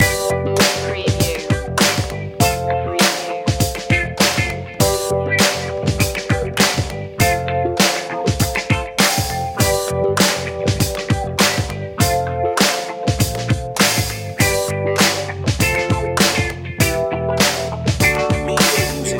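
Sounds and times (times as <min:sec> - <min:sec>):
old school vibe music loop: 0:00.0 - 0:19.1.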